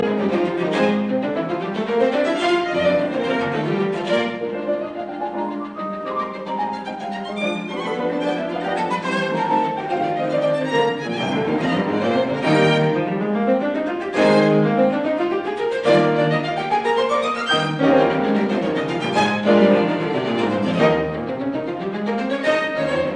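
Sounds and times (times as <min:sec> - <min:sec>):
piano quintet scherzo molto vivace: 0:00.0 - 0:23.1.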